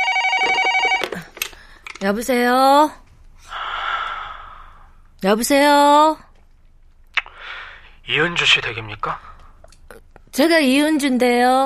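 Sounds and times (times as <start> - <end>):
telephone ringing with a bright electronic tone: 0.0 - 1.2
speech: 2.0 - 3.0, 5.2 - 6.3, 8.1 - 9.3, 10.3 - 11.6.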